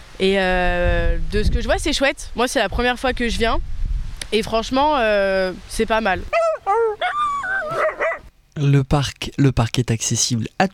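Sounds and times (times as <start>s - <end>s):
speech: 0.2s - 6.4s, 8.6s - 10.7s
dogs yipping and whimpering at a dog park: 6.3s - 8.3s.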